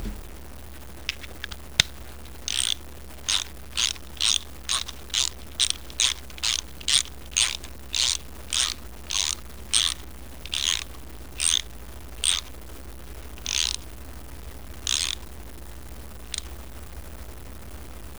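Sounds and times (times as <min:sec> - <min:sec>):
ratchet clicking: 0:00.0 - 0:00.2, 0:01.1 - 0:12.5, 0:13.4 - 0:13.8, 0:14.8 - 0:15.2.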